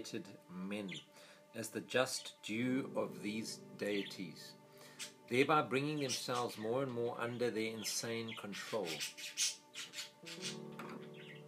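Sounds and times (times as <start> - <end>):
speech: 0.0 - 10.9
birds chirping in agitated bursts: 0.8 - 1.2, 2.1 - 11.4
harsh sustained bird squawking: 4.8 - 5.3, 6.0 - 6.7, 7.8 - 11.4.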